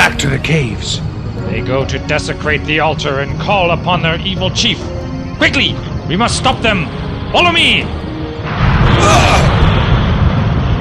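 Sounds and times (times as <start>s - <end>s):
speech: 0.3s - 8.0s
huge explosion with deep rumbling blast: 8.4s - 10.7s.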